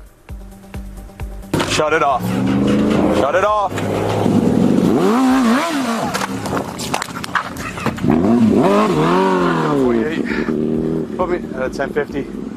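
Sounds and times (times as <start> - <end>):
motorcycle engine revving during a police traffic stop: 1.4 - 12.5
sharp clattering bursts: 1.5 - 8.6
speech: 1.8 - 4.4, 8.1 - 10.4, 11.2 - 12.4.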